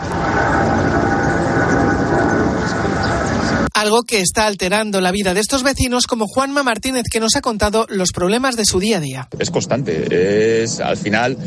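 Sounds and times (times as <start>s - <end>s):
low-flying airplane roaring overhead, landing or taking off: 0.0s - 3.7s, 9.3s - 11.4s
speech: 3.8s - 11.4s.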